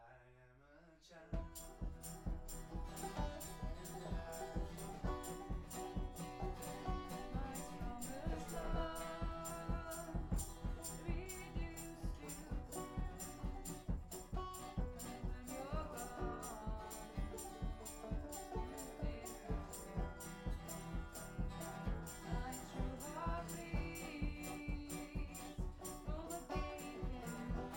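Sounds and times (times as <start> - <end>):
voice: 0.0 - 6.0, 6.7 - 13.8, 14.8 - 27.7.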